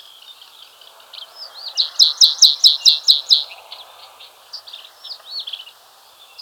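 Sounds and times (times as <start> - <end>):
White-capped bunting song: 0.0 - 6.3.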